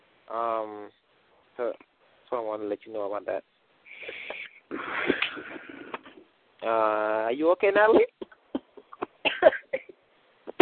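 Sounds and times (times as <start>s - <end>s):
speech: 0.3s - 1.0s, 2.6s - 3.6s, 6.6s - 8.1s
woman with a cold coughing: 7.9s - 9.9s.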